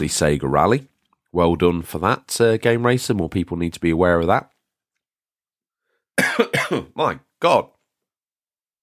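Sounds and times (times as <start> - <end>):
speech: 0.0 - 4.5, 6.2 - 7.8
person coughing: 6.2 - 7.0.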